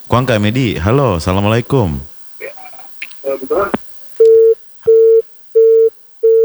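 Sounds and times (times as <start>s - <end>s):
speech: 0.1s - 2.1s, 3.3s - 3.8s
telephone busy tone after call disconnects: 4.2s - 6.4s.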